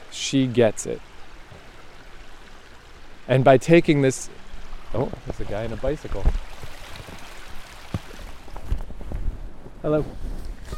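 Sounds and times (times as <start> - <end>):
running stream water: 0.0 - 10.7
speech: 0.3 - 1.1, 3.3 - 6.7, 9.8 - 10.3
low knocks or splashes: 5.0 - 9.4.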